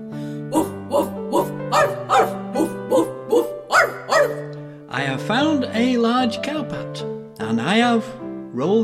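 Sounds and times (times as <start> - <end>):
voice imitating a dog barking: 0.5 - 4.5
speech: 5.8 - 8.8.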